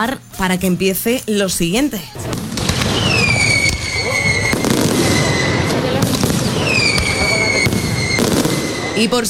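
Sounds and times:
speech: 0.0s - 2.5s, 9.0s - 9.2s
crowd voices murmuring: 2.0s - 9.2s
fireworks display bursts and booms: 2.1s - 9.2s
whistling firework rockets with descending tones: 2.2s - 9.2s.

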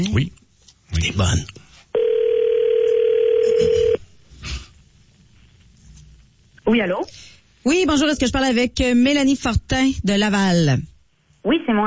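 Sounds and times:
speech: 0.0s - 1.7s, 3.6s - 4.6s, 6.7s - 11.8s
telephone dial tone while placing a call: 2.0s - 4.0s.

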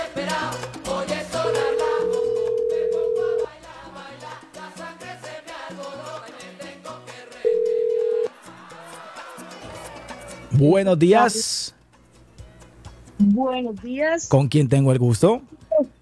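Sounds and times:
music: 0.0s - 15.9s
telephone dial tone while dialing a call live on radio: 1.4s - 3.5s, 7.5s - 8.3s
speech: 10.6s - 11.6s, 13.4s - 15.9s.

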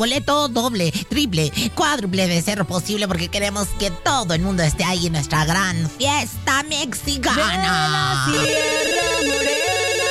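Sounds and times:
speech: 0.0s - 8.8s
telephone ringing with a rapid electronic warbling trill: 8.3s - 10.0s.

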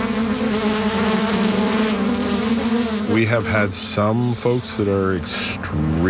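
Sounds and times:
many bees swarming around a hive box at a farm: 0.0s - 6.0s
speech: 3.2s - 6.0s.

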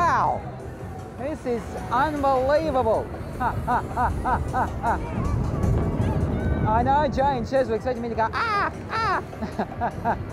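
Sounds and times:
speech: 0.2s - 0.5s, 1.2s - 5.9s, 6.7s - 10.3s
laughter: 3.3s - 5.4s, 8.3s - 10.3s
person high up imitating a seagull squawk: 8.3s - 9.2s.

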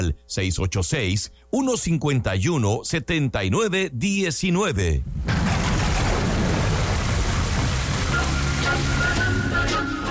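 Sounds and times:
speech: 0.1s - 5.7s
low rumble, possibly thunder: 5.0s - 8.6s
heavy rain: 5.2s - 10.1s.

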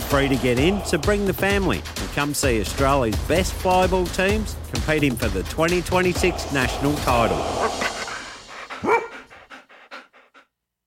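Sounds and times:
speech: 0.1s - 7.9s
dog panting: 7.8s - 10.5s
dog barking: 8.8s - 9.3s.

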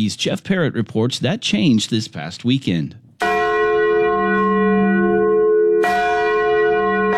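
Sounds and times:
speech: 0.0s - 3.0s
large bronze church bell tolling: 3.2s - 7.1s.

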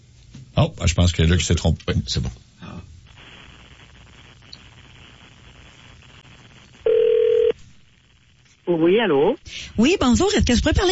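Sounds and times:
speech: 0.6s - 2.4s, 8.8s - 10.9s
faint telephone line hiss: 3.1s - 9.4s
single loud steady telephone tone: 6.8s - 7.6s.

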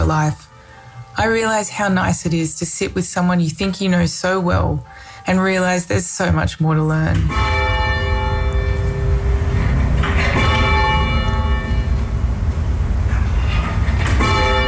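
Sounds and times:
speech: 0.1s - 0.5s, 1.2s - 7.8s
church bells pealing: 7.2s - 14.6s
low rumbling background: 7.2s - 14.6s.

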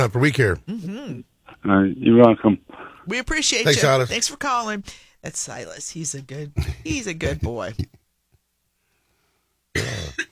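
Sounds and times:
coughing from a person with a froggy throat in the morning: 0.0s - 1.6s, 6.5s - 8.0s, 9.7s - 10.2s
speech: 0.0s - 8.0s, 9.8s - 10.2s.

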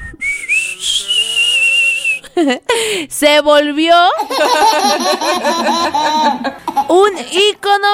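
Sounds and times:
person whistling a tune from a Mexican ranchera song: 0.0s - 2.4s
laughter: 2.2s - 2.8s, 4.2s - 7.1s
speech: 2.4s - 7.9s.

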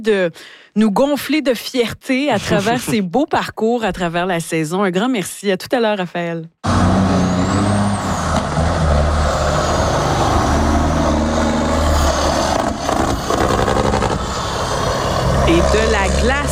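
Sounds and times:
speech: 0.0s - 7.0s
heavy truck engines roaring with rising revs: 6.6s - 16.5s.

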